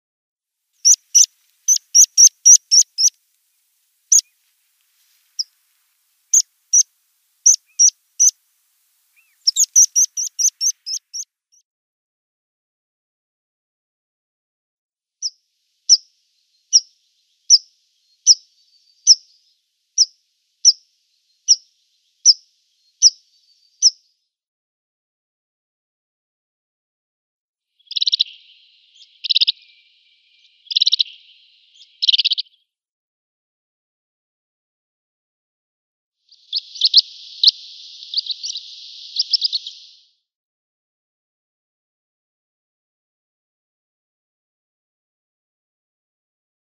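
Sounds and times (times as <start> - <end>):
Meadow Pipit calls: 0.8 - 3.2, 4.1 - 4.3, 6.3 - 8.4, 9.2 - 11.2, 17.5 - 19.3, 21.5 - 22.4, 23.0 - 23.2, 27.8 - 32.5, 36.3 - 40.0.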